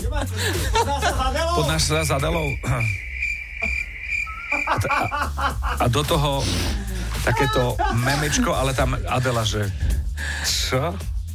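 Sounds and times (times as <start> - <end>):
laughter: 0.0 - 2.9, 3.6 - 9.7
speech: 0.1 - 3.1, 4.8 - 11.1
crickets chirping: 1.6 - 5.8.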